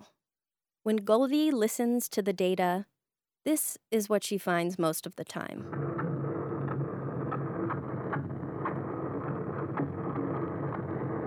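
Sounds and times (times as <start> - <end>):
speech: 0.8 - 6.0
boat engine rumbling underwater in the ocean: 5.7 - 11.2
faint clicks and crackles: 5.7 - 11.2.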